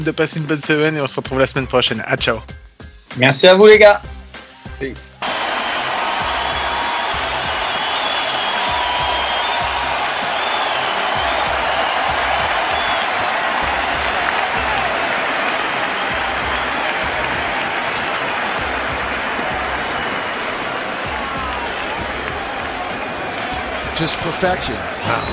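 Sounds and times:
speech: 0.0s - 4.1s, 4.8s - 5.1s, 24.0s - 25.3s
large crowd cheering and applauding: 5.2s - 25.3s
people shouting: 5.2s - 25.3s.

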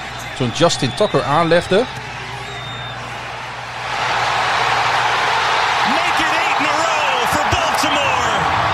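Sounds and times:
huge football stadium crowd roaring during field goal kick: 0.0s - 8.7s
speech: 0.4s - 2.1s
shouts and whoops from stadium crowd: 4.2s - 8.7s.

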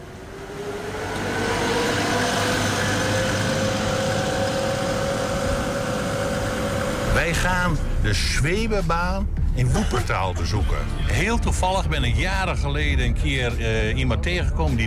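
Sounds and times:
bus carrying passengers idling: 0.0s - 9.1s
speech: 7.2s - 14.8s.

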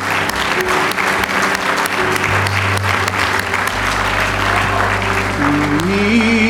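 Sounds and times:
large indoor audience applauding: 0.0s - 6.4s
low organ-like droning tone: 2.8s - 6.4s.

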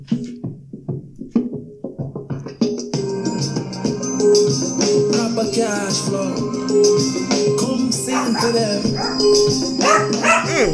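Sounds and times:
musical backing: 0.4s - 10.7s
speech: 4.5s - 10.7s
dog barking: 8.0s - 10.7s.

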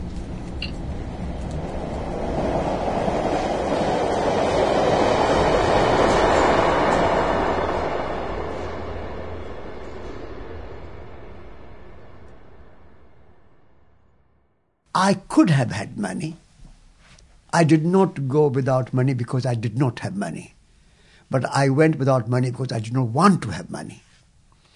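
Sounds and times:
London Underground Circle Line train rumbling: 0.0s - 14.3s
speech: 15.0s - 16.4s, 17.5s - 20.6s, 21.3s - 24.1s.

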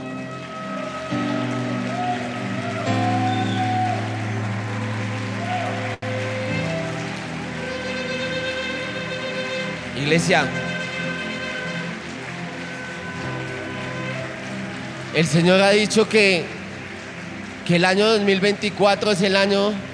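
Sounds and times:
crowd clapping: 0.0s - 19.9s
speech: 10.0s - 10.6s, 15.2s - 16.6s, 17.7s - 19.9s.

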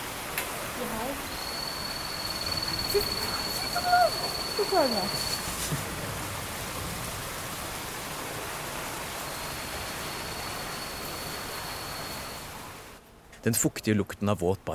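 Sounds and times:
rushing or falling water in tropical rainforest: 0.0s - 13.0s
faint thin high tone: 1.3s - 5.4s
speech: 2.9s - 5.8s, 13.4s - 14.7s.

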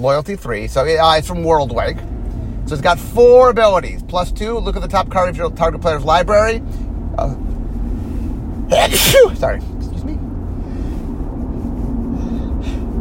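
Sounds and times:
speech: 0.0s - 2.1s, 2.7s - 7.4s, 8.7s - 10.2s
steady low rumble: 0.0s - 12.9s
person sneezing: 8.7s - 9.4s.

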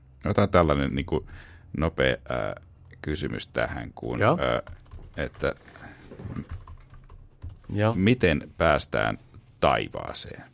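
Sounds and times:
speech: 0.2s - 6.5s, 7.7s - 10.5s
typing on a computer keyboard: 4.5s - 7.8s.

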